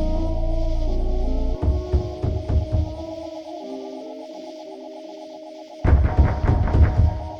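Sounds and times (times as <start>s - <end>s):
steady electronic drone of MRI scanner: 0.0s - 7.3s
MRI scanner hammering rhythmic mechanical pulses: 1.6s - 3.3s, 5.8s - 7.3s.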